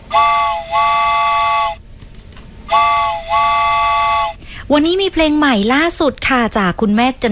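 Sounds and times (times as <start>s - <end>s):
train whistle blasts: 0.0s - 1.8s, 2.7s - 4.4s
speech: 4.7s - 7.3s.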